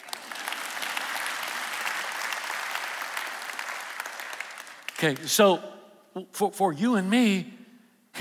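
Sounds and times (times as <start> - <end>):
audience clapping and applause: 0.0 - 5.5
speech: 5.0 - 7.6.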